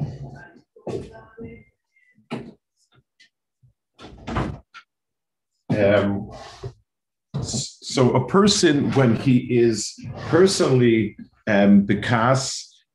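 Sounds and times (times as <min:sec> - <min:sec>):
speech: 0:00.9 - 0:01.5, 0:05.8 - 0:06.5, 0:07.4 - 0:12.9
door closing with a solid thud and rattle: 0:04.0 - 0:04.7.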